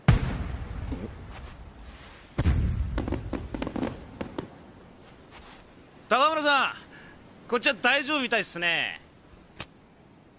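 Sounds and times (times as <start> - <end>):
fireworks low rumbling boom: 0.0 - 4.9
hissy background: 0.0 - 10.3
fireworks cracks and pops: 2.4 - 4.6
speech: 6.1 - 6.8, 7.5 - 9.0.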